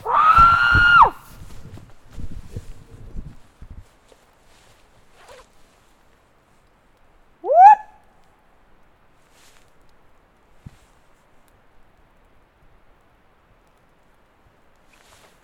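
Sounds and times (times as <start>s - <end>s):
man screaming imitating a Bigfoot call: 0.0s - 1.2s, 7.4s - 7.9s
rustling: 0.0s - 6.8s, 9.2s - 11.6s, 14.8s - 15.4s
short rising yelp: 7.4s - 8.0s.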